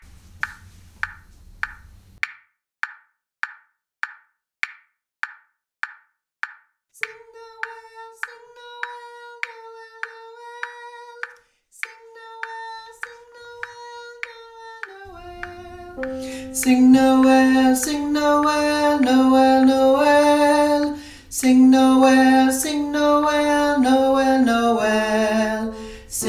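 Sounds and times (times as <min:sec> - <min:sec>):
song: 0:15.1 - 0:26.2.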